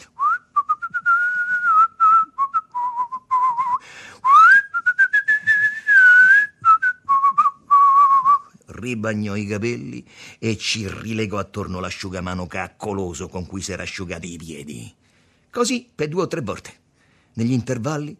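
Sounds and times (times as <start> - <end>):
person whistling a tune: 0.1 - 8.6
speech: 8.9 - 15.0, 15.6 - 16.8, 17.4 - 18.1.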